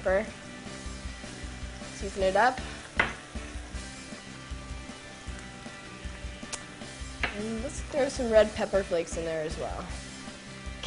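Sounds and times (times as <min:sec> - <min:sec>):
speech: 0:00.0 - 0:00.5, 0:02.0 - 0:02.7, 0:07.4 - 0:10.0
cauliflower and other vegetables sautéing in a pan: 0:00.3 - 0:09.0
soft regular stirring knocks in a pan: 0:02.6 - 0:03.8.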